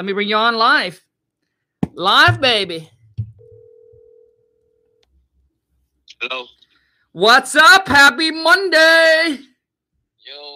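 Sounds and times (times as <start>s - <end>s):
speech: 0.0s - 1.1s, 1.9s - 3.0s, 6.2s - 9.5s
phone line electronic ringback tone: 3.3s - 5.0s.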